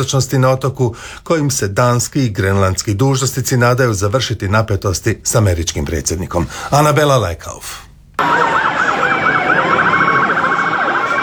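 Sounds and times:
speech: 0.0 - 9.2
police car siren wailing in New York city streets: 8.2 - 11.2.

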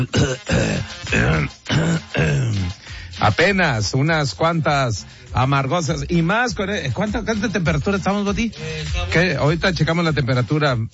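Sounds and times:
speech: 0.0 - 1.6, 3.2 - 10.9
person clearing throat with raspy voiced rasps: 0.0 - 2.8.

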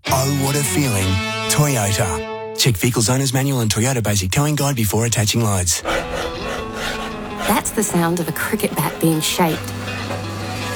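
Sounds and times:
speech: 0.3 - 10.1
concrete being mixed churning and grinding: 5.6 - 10.7.

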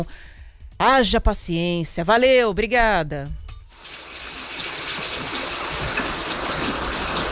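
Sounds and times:
speech: 0.0 - 0.2, 0.8 - 3.4
steady rain falling: 3.8 - 7.2.

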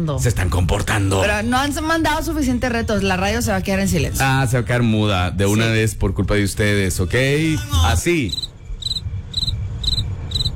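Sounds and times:
speech: 0.0 - 8.5
low rumble: 0.0 - 10.5
cricket chirping in rapid trills: 8.3 - 10.5.

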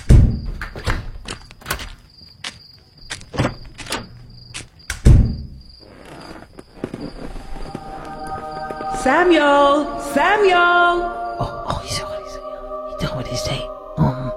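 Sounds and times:
cricket chirping: 0.0 - 14.3
door being shut and locked: 0.1 - 2.0, 3.1 - 5.6
speech: 9.0 - 11.2.

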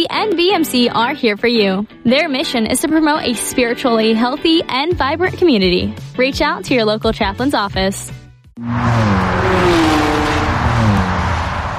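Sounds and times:
speech: 0.0 - 9.8
car engine humming as it accelerates in Germany: 8.6 - 11.7
continuous rushing road noise: 8.6 - 11.7.

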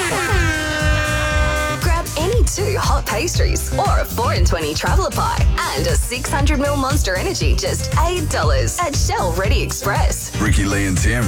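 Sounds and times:
air horn sound effects blaring: 0.0 - 2.9
speech: 2.6 - 11.2.

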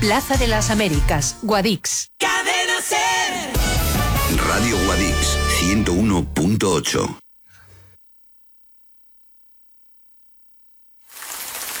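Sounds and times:
speech: 0.0 - 3.6, 4.5 - 7.2
hissing rain: 11.1 - 11.7.

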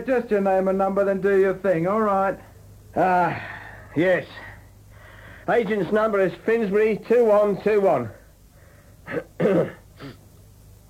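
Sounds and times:
speech: 0.0 - 4.5, 5.5 - 8.2, 9.1 - 10.2
raspy throat clearing: 9.0 - 10.2.

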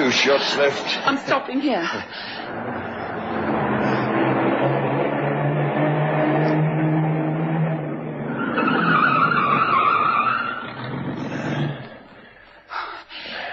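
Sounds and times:
speech: 0.1 - 2.9
car engine rumbling: 2.0 - 12.4
tires squealing in a sustained skid as the car brakes hard: 2.3 - 12.1.

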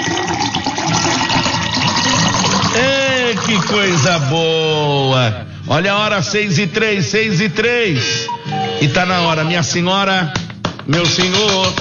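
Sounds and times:
water pouring into a glass: 0.0 - 4.4
speech: 3.6 - 11.7.

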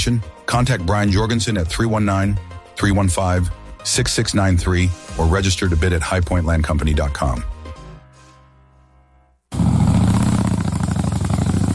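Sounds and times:
speech: 0.0 - 7.5
motorcycle engine revving: 9.5 - 11.7.

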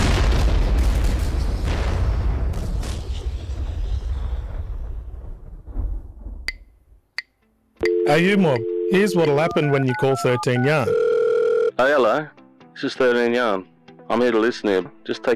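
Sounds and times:
mine exploding in a minefield with deep boom: 0.0 - 6.4
speech: 8.1 - 11.0, 11.8 - 15.3.

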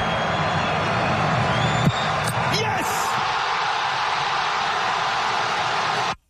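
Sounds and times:
sharp whistles: 0.0 - 2.4
huge stadium crowd cheering penalty shootout winner: 0.0 - 6.2.

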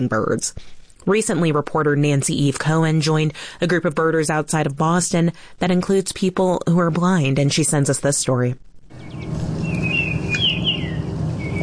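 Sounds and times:
speech: 0.0 - 9.4
low background rumble: 8.6 - 11.6
Baltimore oriole singing: 9.0 - 11.6.

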